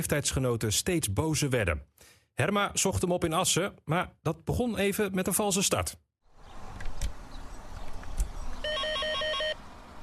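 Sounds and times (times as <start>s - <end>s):
speech: 0.0s - 6.1s
telephone ringing with electronic trill: 8.6s - 9.6s.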